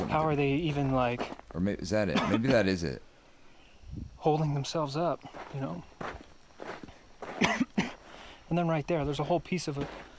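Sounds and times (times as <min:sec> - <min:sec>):
speech: 0:00.1 - 0:03.1, 0:03.9 - 0:06.2, 0:08.5 - 0:10.1
man coughing: 0:02.1 - 0:02.7, 0:07.4 - 0:08.0.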